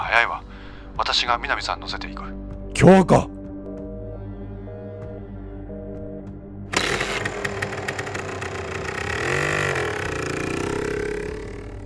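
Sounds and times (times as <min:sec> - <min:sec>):
speech: 0:00.1 - 0:03.4
off-road motorcycle engine starting and revving: 0:06.7 - 0:11.8.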